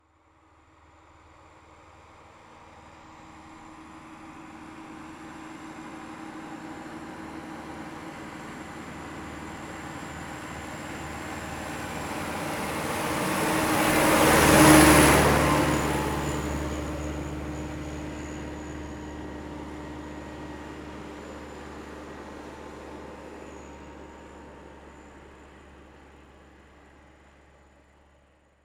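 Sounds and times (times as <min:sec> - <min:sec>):
Massey-Ferguson 3060E tractor passing by outdoors: 0:10.5 - 0:24.9.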